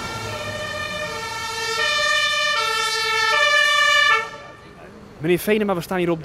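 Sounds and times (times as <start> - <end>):
fire engine siren wailing in a two-tone pattern: 0.0 - 4.8
low vehicle rumble: 0.0 - 6.2
speech: 5.2 - 6.2.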